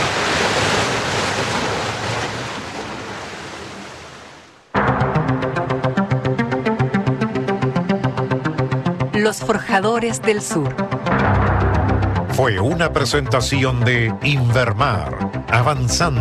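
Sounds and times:
ocean waves crashing and churning against rocks: 0.0s - 4.5s
rhythmic music: 4.8s - 16.1s
speech: 9.3s - 11.2s, 12.4s - 16.1s.

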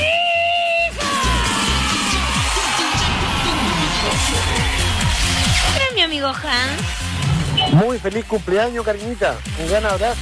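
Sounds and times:
group shouting celebratory yell as a team greeting: 0.9s - 5.8s
speech: 6.2s - 7.1s, 7.7s - 10.1s.

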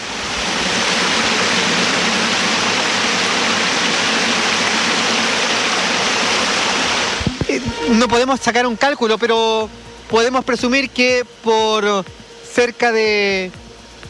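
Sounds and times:
rainwater gushing into a street storm drain with trash: 0.0s - 7.4s
speech: 7.9s - 13.6s.

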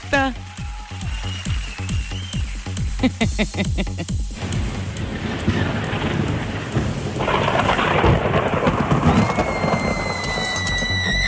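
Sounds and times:
steady rainfall: 0.0s - 11.2s
speech: 0.1s - 0.5s, 3.0s - 4.6s
laughter: 2.9s - 4.3s
deep rolling thunder during a heavy rainstorm: 4.3s - 11.2s.

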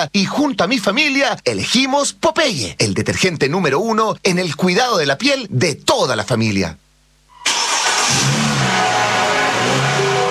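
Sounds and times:
speech: 0.0s - 6.8s, 7.4s - 8.9s
car engine revving: 7.5s - 10.2s.

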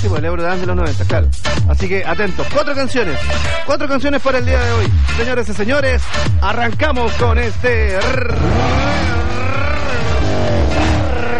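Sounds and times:
speech: 0.0s - 9.2s
car engine revving loudly: 7.9s - 11.3s
tire squeal: 8.0s - 11.3s.

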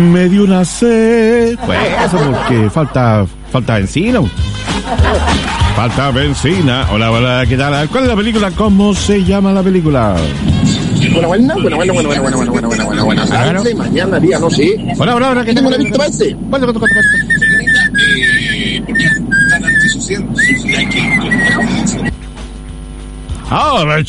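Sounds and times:
speech: 0.0s - 17.5s, 18.2s - 22.3s, 23.5s - 24.0s
voices chattering: 0.0s - 23.0s
laughter: 1.2s - 3.4s, 4.6s - 8.4s, 16.9s - 22.1s
person whistling a melody: 16.8s - 22.0s.

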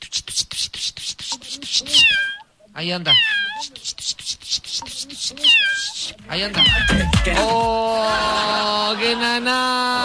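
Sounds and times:
fast steady pulsing rhythm: 0.3s - 2.1s, 3.6s - 8.8s
lost kitten meowing: 1.6s - 2.5s, 3.1s - 3.9s, 4.8s - 7.3s
speech: 2.8s - 3.7s, 6.3s - 10.0s
laughter: 7.0s - 10.0s.

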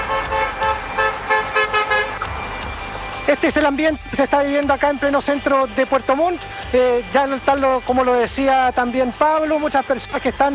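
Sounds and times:
car horns honking in celebration: 0.0s - 2.5s
steady street rumble: 0.0s - 10.5s
speech: 3.5s - 10.5s.

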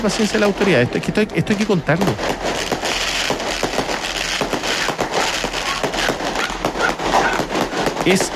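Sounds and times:
speech: 0.0s - 2.7s, 8.0s - 8.3s
fireworks crackling, popping and banging: 0.0s - 8.3s.

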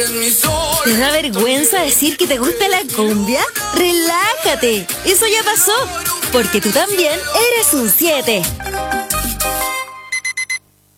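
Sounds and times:
speech: 0.0s - 8.8s
alarm clock ringing: 9.6s - 10.6s.

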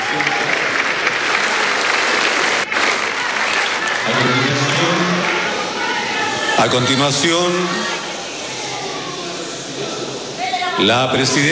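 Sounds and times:
large crowd applauding in a big ceremonial hall: 0.0s - 10.3s
people shouting: 3.1s - 10.8s
speech: 6.6s - 7.9s, 10.8s - 11.5s.

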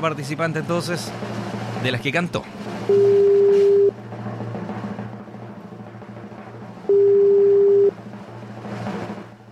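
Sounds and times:
speech: 0.0s - 3.2s
low constant hum: 0.0s - 9.4s
telephone ringback tones of an unanswered call: 2.9s - 3.9s, 6.9s - 7.9s.

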